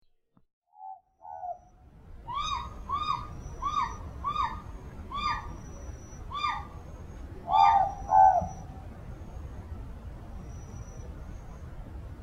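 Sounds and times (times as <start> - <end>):
morepork owl calling: 0.8 - 8.7.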